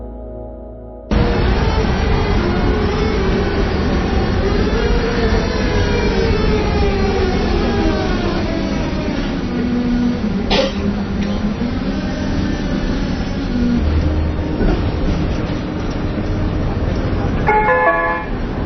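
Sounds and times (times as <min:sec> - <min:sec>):
Prague tram rumbling on rails: 0:01.1 - 0:18.6
sustained horn-like tone: 0:17.5 - 0:18.5.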